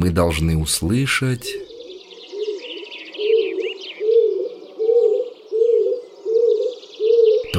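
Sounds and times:
speech: 0:00.0 - 0:01.7
birds chirping: 0:00.0 - 0:07.5
pigeon cooing in an old oak forest: 0:01.6 - 0:07.5.

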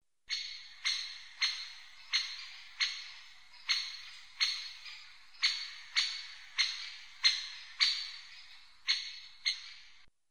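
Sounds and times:
great spotted woodpecker calling: 0:00.3 - 0:10.1.

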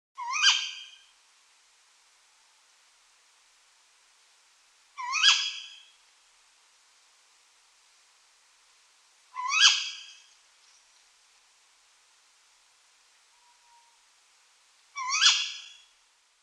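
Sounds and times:
tawny owl calling: 0:00.2 - 0:01.1, 0:05.0 - 0:06.0, 0:09.3 - 0:10.3, 0:14.9 - 0:15.9.

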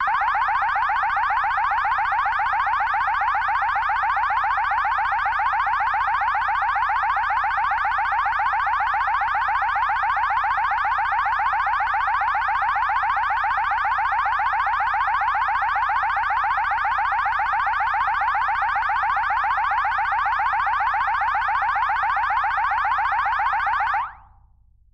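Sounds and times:
alarm sounding: 0:00.0 - 0:24.4.

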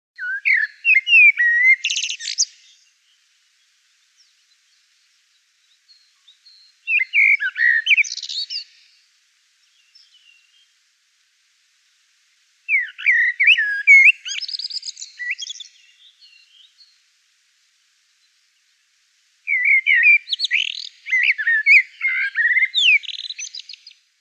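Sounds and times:
blackbird singing: 0:00.2 - 0:03.2, 0:05.6 - 0:08.9, 0:09.7 - 0:10.7, 0:12.7 - 0:17.0, 0:19.5 - 0:24.0.

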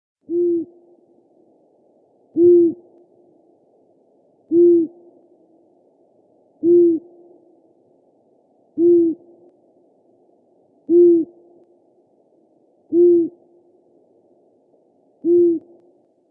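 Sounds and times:
long-eared owl calling: 0:00.3 - 0:00.9, 0:02.4 - 0:02.9, 0:04.5 - 0:05.0, 0:06.6 - 0:07.1, 0:08.8 - 0:09.3, 0:10.9 - 0:11.4, 0:12.9 - 0:13.4, 0:15.2 - 0:15.8.

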